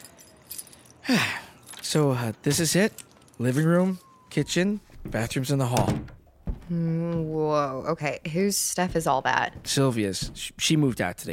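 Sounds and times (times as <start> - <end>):
bunch of keys jangling: 0.0 - 4.2
speech: 1.1 - 11.3.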